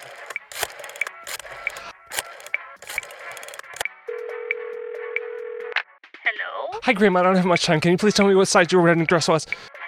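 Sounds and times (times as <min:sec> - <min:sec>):
rotary dial landline telephone clicking while being dialed: 0:00.0 - 0:03.8
steady landline telephone tone: 0:04.1 - 0:05.8
speech: 0:06.8 - 0:09.7.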